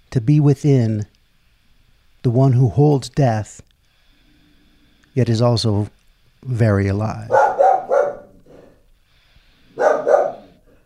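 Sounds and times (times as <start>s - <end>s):
speech: 0.1s - 1.1s, 2.2s - 3.7s, 5.2s - 7.4s
dog barking: 7.3s - 8.8s, 9.8s - 10.7s.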